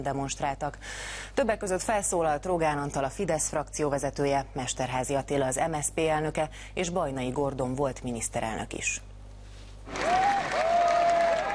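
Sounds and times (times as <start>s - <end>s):
speech: 0.0s - 9.1s
crowd applauding at a mass demonstration against Nazism: 9.9s - 11.5s.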